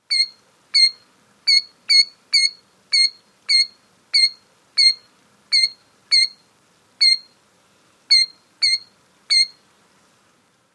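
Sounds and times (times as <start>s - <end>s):
bird ground alarm call: 0.0s - 6.4s, 7.0s - 7.3s, 8.1s - 9.6s.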